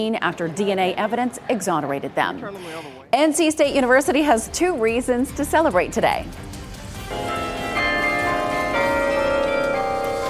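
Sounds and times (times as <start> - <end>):
speech: 0.0 - 7.3
bell tower bells ringing: 7.1 - 10.2.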